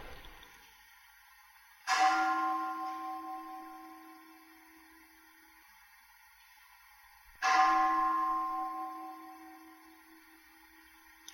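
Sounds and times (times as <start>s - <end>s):
temple bell struck and ringing: 1.8s - 5.3s, 7.3s - 11.0s.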